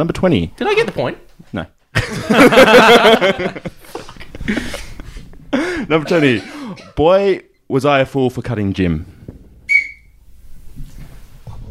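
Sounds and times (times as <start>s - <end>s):
speech: 0.0s - 3.8s, 4.5s - 4.8s, 5.5s - 9.2s
laughter: 2.0s - 7.0s
person giving a short sharp high whistle: 9.7s - 10.2s.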